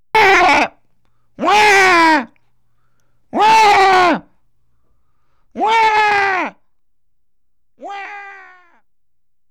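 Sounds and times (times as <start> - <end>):
comic cry: 0.2 - 0.8, 1.4 - 2.3, 3.4 - 4.2, 5.6 - 6.6, 7.8 - 8.8.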